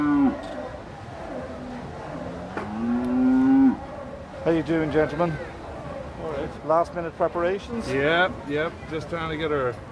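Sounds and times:
cattle mooing at an agricultural show: 0.0 - 0.4, 2.5 - 3.8
faint murmur of activity at an agricultural show: 0.0 - 9.9
speech: 4.4 - 5.5, 6.5 - 9.9.

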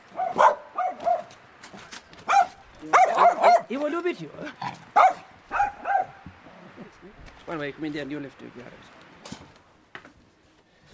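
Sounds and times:
dog barking: 0.1 - 1.3, 2.3 - 3.7, 5.0 - 6.2
speech: 3.7 - 4.8, 7.5 - 9.0.

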